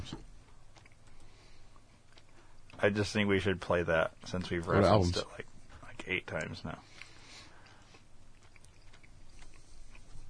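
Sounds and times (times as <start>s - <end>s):
low hum: 0.0s - 10.2s
chewing: 0.4s - 2.9s, 6.3s - 10.2s
speech: 2.8s - 5.4s, 6.1s - 7.0s.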